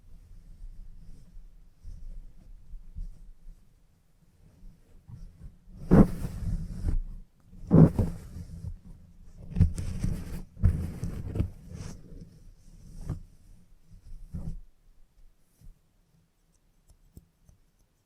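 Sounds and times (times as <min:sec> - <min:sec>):
head massage rubbing and thumping during a salon haircut: 0:05.1 - 0:13.4, 0:14.0 - 0:14.7.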